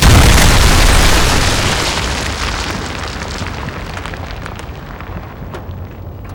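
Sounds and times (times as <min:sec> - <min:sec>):
missile explosion: 0:00.0 - 0:03.9.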